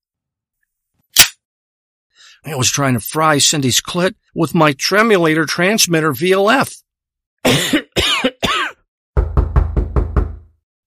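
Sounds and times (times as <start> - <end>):
speech: 2.2 - 6.8, 7.4 - 8.3
harsh cough-like vocal bursts: 7.4 - 8.8
knocking on a door: 9.2 - 10.6.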